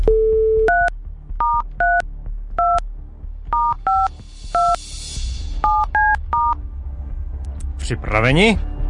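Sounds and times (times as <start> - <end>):
DTMF touch-tone beeps of a telephone number being dialed: 0.1 - 2.0, 2.6 - 2.8, 3.5 - 4.8, 5.6 - 6.6
speech: 7.9 - 8.7.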